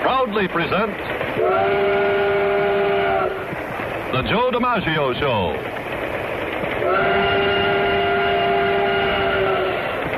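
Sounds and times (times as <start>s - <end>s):
speech: 0.2s - 2.3s, 4.1s - 5.8s, 6.8s - 7.5s
model train whistle sound effect blast: 1.4s - 3.5s, 6.8s - 10.1s.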